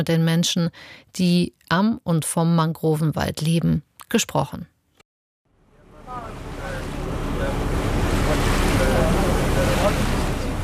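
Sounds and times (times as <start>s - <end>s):
speech: 0.0s - 4.7s
wind rumble: 5.6s - 10.6s
boat pushing through waves and spray into the Sundarbans mangrove forest in India: 5.8s - 10.6s.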